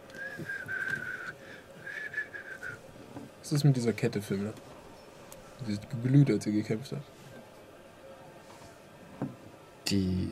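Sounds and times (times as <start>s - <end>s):
person whistling a thin high tone: 0.1s - 2.8s
speech: 3.5s - 4.7s, 5.6s - 7.2s, 9.9s - 10.3s.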